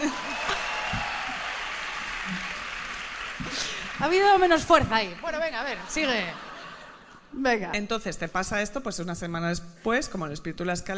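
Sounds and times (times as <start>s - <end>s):
room full of people applauding: 0.0s - 6.8s
speech: 4.0s - 6.4s, 7.4s - 10.9s
laughter: 5.9s - 7.3s.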